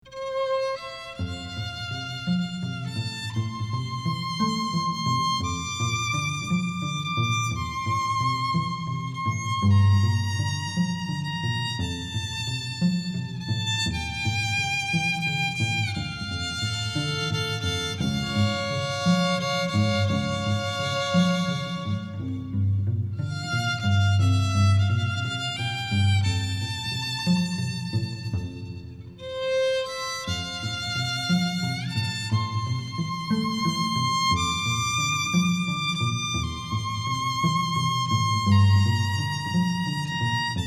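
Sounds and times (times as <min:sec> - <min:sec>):
wedding ceremony string duo playing: 0:00.0 - 0:40.6.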